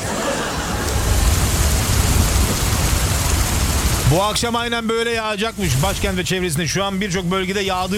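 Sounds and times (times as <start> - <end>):
laughter: 0.0 - 1.4
heavy rain pouring: 0.0 - 7.9
deep low rumble: 0.5 - 4.2
speech: 4.1 - 7.9.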